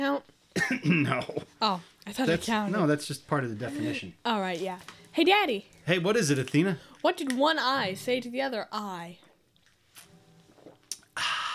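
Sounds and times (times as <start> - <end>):
speech: 0.0 - 9.2
person drinking water with wet gulps: 10.5 - 11.4
loud breathy exhale: 11.2 - 11.5.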